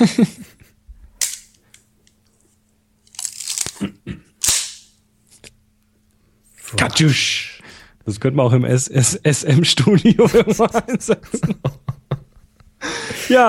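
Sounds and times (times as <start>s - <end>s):
speech: 0.0s - 0.6s, 6.7s - 11.9s, 12.8s - 13.4s
laughter: 0.0s - 0.8s, 9.4s - 13.4s
old folding film camera ratcheting: 3.0s - 3.8s.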